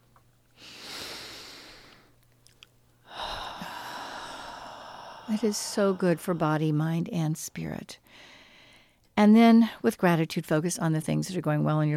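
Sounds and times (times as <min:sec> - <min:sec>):
deep slow breath: 0:00.6 - 0:02.2, 0:03.0 - 0:06.6, 0:08.0 - 0:09.0
speech: 0:05.3 - 0:08.3, 0:09.2 - 0:11.9.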